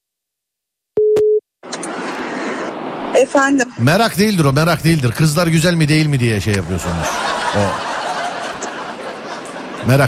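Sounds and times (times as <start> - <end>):
phone line ringback tone while a call is placed: 1.0 - 1.4
speech: 3.2 - 7.9, 9.8 - 10.0
laughter: 6.6 - 10.0.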